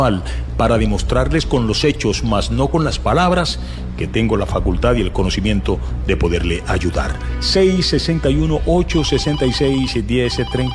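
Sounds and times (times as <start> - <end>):
speech: 0.0 - 10.7
telephone ringing: 9.4 - 10.7.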